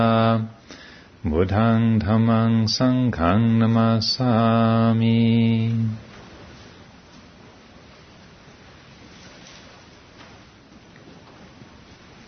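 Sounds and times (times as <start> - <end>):
speech: 1.2 - 6.1
soft rain falling at night at a monastery: 5.5 - 12.2.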